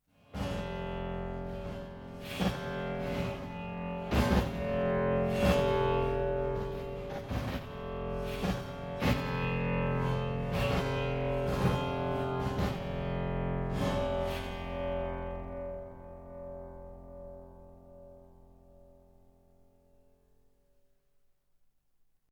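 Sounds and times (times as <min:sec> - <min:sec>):
resonating buzz: 0:00.6 - 0:20.4.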